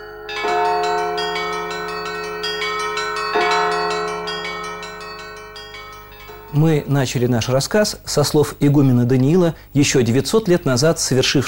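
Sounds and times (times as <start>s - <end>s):
monastery church bells in Jerusalem rung by a nun: 0.0s - 7.4s
speech: 6.6s - 11.4s.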